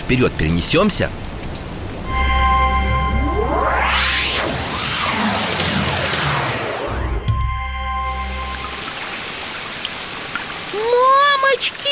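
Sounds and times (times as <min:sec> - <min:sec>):
heavy rain pouring down: 0:00.0 - 0:11.9
speech: 0:00.1 - 0:01.3
rising and falling whooshing sweeps: 0:02.0 - 0:09.1
sustained electronic tones: 0:02.0 - 0:09.4.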